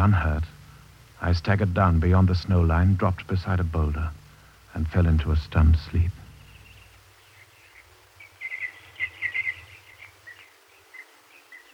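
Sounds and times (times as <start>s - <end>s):
speech: 0.0s - 0.6s, 1.2s - 6.2s
faint low rumble: 0.0s - 11.7s
birds singing in trees in broad daylight: 5.7s - 11.7s.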